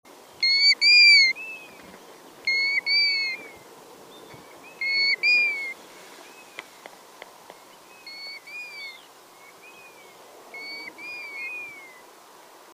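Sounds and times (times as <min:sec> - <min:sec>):
golden plover flight calls during migration: 0:00.4 - 0:01.8, 0:02.4 - 0:06.8, 0:08.0 - 0:09.0, 0:09.8 - 0:12.1.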